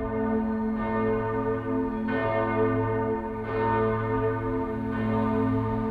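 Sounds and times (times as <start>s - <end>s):
large church bell tolling: 0.0s - 5.8s.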